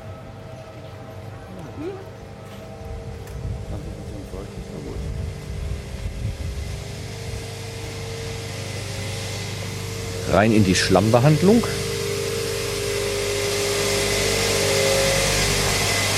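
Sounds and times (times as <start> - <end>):
rotary drum screen running at a sewage treatment plant: 2.7 - 16.1
speech: 10.3 - 11.8.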